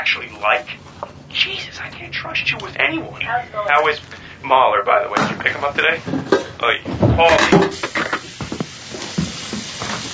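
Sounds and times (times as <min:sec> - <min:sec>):
speech: 0:00.1 - 0:08.0
food sizzling while cooking in a pan: 0:07.7 - 0:10.1.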